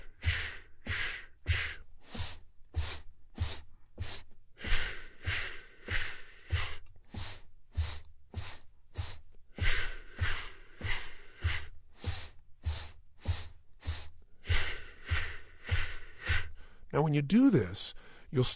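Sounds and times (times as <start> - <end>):
segmented breathing in through the nose and out in stages: 0.0 - 18.5
speech: 17.0 - 18.5.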